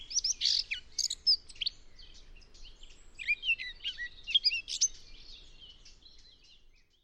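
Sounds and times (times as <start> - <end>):
Eurasian blackcap song of scratchy warbles and whistled notes: 0.0 - 7.0.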